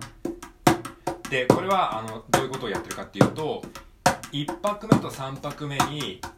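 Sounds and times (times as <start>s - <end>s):
mini cajon played in a drum beat: 0.0s - 6.3s
speech: 1.3s - 6.3s.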